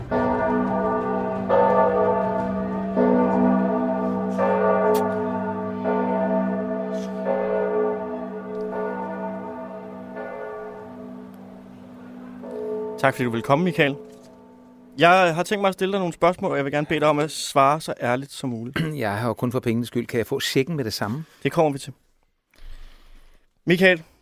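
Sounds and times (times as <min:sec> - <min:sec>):
church bells ringing in a slow peal: 0:00.0 - 0:16.6
speech: 0:13.0 - 0:14.2, 0:15.0 - 0:22.0, 0:23.6 - 0:24.1.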